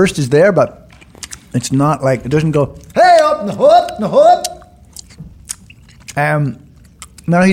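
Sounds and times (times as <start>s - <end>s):
speech: 0.0s - 0.8s, 1.5s - 4.6s, 6.2s - 6.6s, 7.3s - 7.5s
moist chewing of soft chewy candy: 0.8s - 1.8s, 2.7s - 7.5s.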